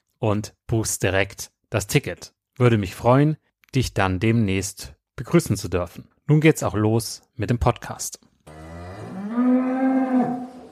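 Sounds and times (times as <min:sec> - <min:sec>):
speech: 0:00.2 - 0:08.3
cow mooing: 0:08.5 - 0:10.7.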